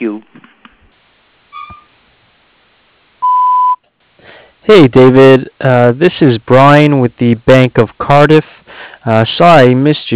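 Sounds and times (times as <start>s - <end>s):
voicemail recording electronic beep tone: 1.5s - 1.9s, 3.2s - 3.8s
speech: 4.7s - 10.1s.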